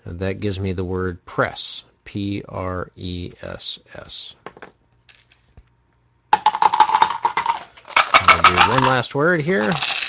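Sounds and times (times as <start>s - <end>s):
speech: 0.1s - 4.4s, 8.4s - 10.0s
several dice rolled and tumbling across a hard surface: 4.4s - 5.4s, 6.4s - 9.0s, 9.6s - 10.0s.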